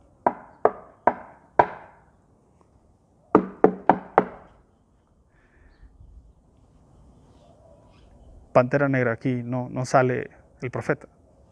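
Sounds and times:
sharp knocks on a wooden door: 3.4s - 4.4s
speech: 8.6s - 11.2s.

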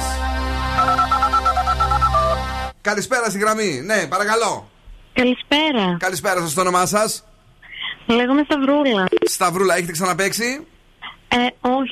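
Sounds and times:
low hum: 0.0s - 11.9s
ringtone of an incoming phone call: 0.7s - 2.6s
speech: 2.8s - 7.3s, 8.1s - 11.9s.

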